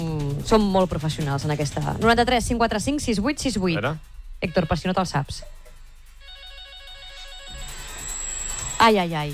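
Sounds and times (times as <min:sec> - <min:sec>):
speech: 0:00.5 - 0:05.6, 0:08.8 - 0:09.3
telephone ringing with an electronic ringtone during a test call: 0:06.2 - 0:09.0.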